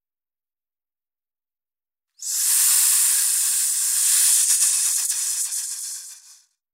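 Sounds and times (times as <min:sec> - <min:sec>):
hiss of escaping air or steam: 0:02.2 - 0:06.4.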